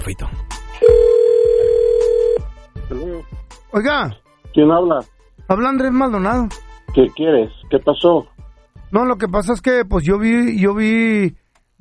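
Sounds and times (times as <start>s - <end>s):
speech: 0.0s - 1.1s, 2.9s - 8.3s, 8.9s - 11.7s
telephone dial tone: 0.8s - 2.4s.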